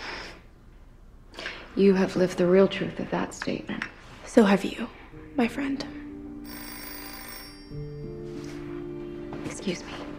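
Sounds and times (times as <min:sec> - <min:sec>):
speech: 0:01.8 - 0:06.0, 0:09.6 - 0:10.1
telephone bell ringing: 0:06.4 - 0:08.5.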